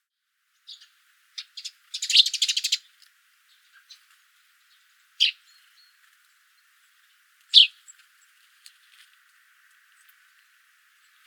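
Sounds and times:
Eurasian tree sparrow chirping: 0.6s - 4.0s, 4.6s - 6.0s, 7.5s - 8.0s.

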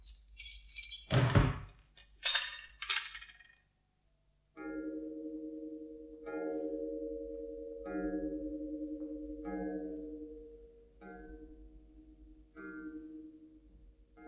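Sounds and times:
jangling metallic clinks: 0.0s - 3.6s
door shutting with a firm thud: 1.1s - 3.2s
steady humming musical tone: 4.8s - 14.0s.

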